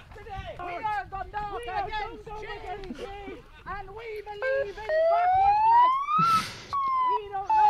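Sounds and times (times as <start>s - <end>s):
chattering crowd of voices: 0.0s - 7.6s
siren wailing in a played video clip: 4.5s - 7.6s.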